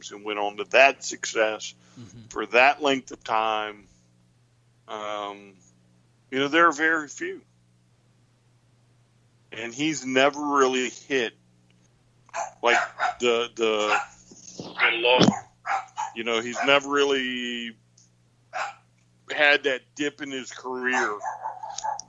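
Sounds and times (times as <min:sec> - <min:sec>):
speech: 0:00.0 - 0:03.9, 0:04.9 - 0:05.6, 0:06.3 - 0:07.5, 0:09.5 - 0:11.4, 0:12.4 - 0:17.8, 0:18.6 - 0:21.9
dogs barking: 0:12.3 - 0:14.2, 0:14.8 - 0:16.9, 0:18.5 - 0:18.8, 0:20.8 - 0:22.0.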